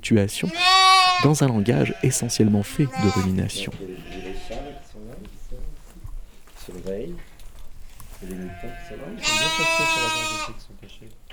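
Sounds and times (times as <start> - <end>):
speech: 0.0 - 4.2, 8.2 - 11.3
young sheep bleating: 0.4 - 5.1, 8.2 - 10.6.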